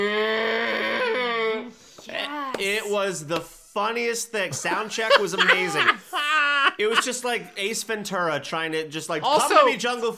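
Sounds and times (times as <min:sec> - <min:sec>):
human voice imitating a cow mooing on a farm: 0:00.0 - 0:02.4
speech: 0:02.6 - 0:06.2, 0:06.8 - 0:10.1
laughter: 0:04.5 - 0:07.3.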